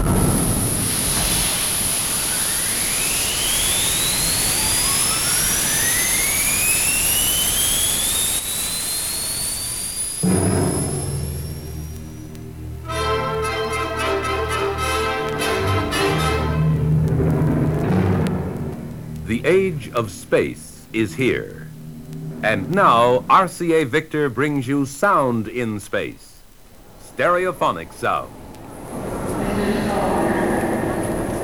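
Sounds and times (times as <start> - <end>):
rocket engine firing at launch sound effect: 0.0 - 13.2, 14.3 - 25.1, 26.8 - 31.4
whistling tones sweeping upward: 0.6 - 16.7
music: 10.2 - 19.8
speech: 19.4 - 21.6, 22.4 - 26.3, 27.2 - 28.4.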